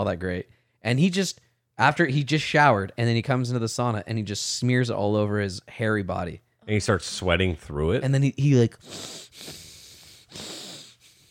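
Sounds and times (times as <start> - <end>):
speech: 0.0 - 9.6
man imitating heavy rasping breathing of a sweating man in a gym sauna: 8.7 - 11.2.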